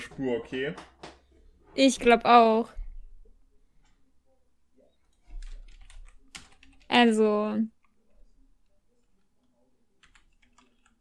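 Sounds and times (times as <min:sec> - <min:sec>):
speech: 0:00.1 - 0:01.0, 0:01.8 - 0:02.8, 0:07.0 - 0:07.8
typing on a computer keyboard: 0:05.1 - 0:07.0, 0:09.1 - 0:10.9.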